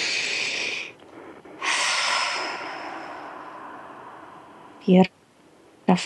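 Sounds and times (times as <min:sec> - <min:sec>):
group taking a deep breath together: 0:00.0 - 0:04.8.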